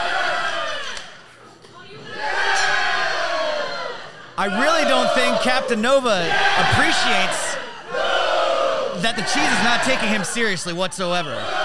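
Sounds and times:
large wrestling arena crowd roaring and cheering: 0.0s - 11.6s
speech: 4.4s - 7.4s, 9.0s - 11.6s.

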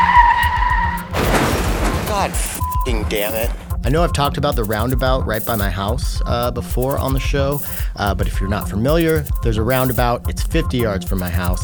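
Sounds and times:
car tires squealing in a skid: 0.0s - 3.9s
burst of harsh broadband noise: 0.0s - 11.6s
low car engine rumble: 0.0s - 11.6s
speech: 2.2s - 11.6s.

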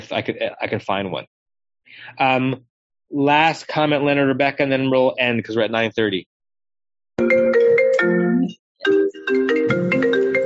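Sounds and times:
speech: 0.0s - 1.3s, 1.9s - 6.3s, 8.0s - 9.9s
mobile phone ringtone with bright electronic melody: 7.2s - 10.4s.

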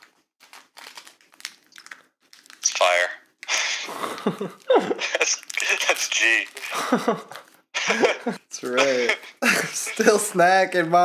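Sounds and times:
crinkly plastic chewy bar wrapper rustling and tearing open: 0.0s - 3.5s, 4.2s - 7.6s
laughter: 3.5s - 6.0s, 6.6s - 10.2s
speech: 4.2s - 11.0s.

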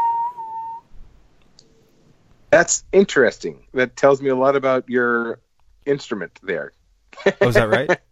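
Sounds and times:
person whistling one mid-pitched note on an inhaled breath: 0.0s - 0.9s
speech: 2.6s - 8.1s
laughter: 7.2s - 8.0s.

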